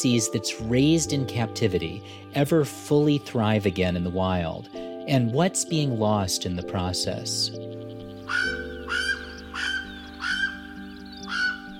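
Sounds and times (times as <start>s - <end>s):
speech: 0.0s - 8.7s
Hawaiian crow alala cawing: 8.2s - 11.7s.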